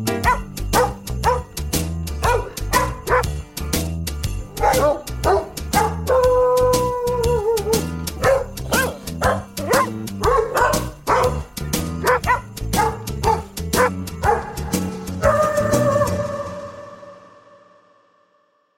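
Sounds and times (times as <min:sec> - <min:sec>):
dog barking a Christmas song parody: 0:00.2 - 0:01.6, 0:02.2 - 0:03.4, 0:04.4 - 0:16.4.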